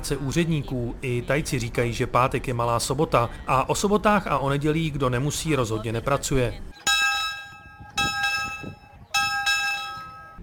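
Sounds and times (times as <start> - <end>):
speech: 0.0 - 6.9
railway station bell ringing at the platform in Hua Hin: 6.8 - 10.4.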